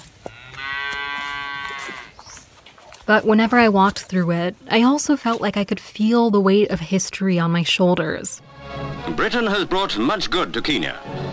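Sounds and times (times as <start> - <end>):
faint outdoor noise on a family farm: 0.0 - 8.4
cow mooing on a family farm: 0.3 - 2.2
speech: 3.1 - 11.2.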